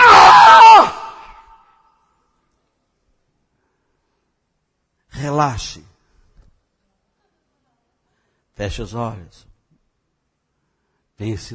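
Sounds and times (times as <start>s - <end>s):
person screaming: 0.0s - 1.6s
speech: 5.4s - 5.9s, 8.6s - 9.5s, 11.2s - 11.5s.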